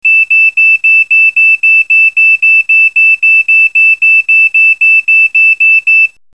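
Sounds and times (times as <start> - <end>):
alarm tone from a broadcast room bell system: 0.0 - 6.2.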